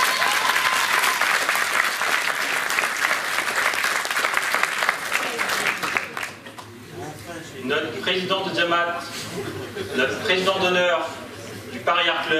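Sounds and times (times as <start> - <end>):
audience applauding: 0.0 - 6.5
speech: 8.1 - 11.2, 11.9 - 12.3
laughter: 9.1 - 10.6.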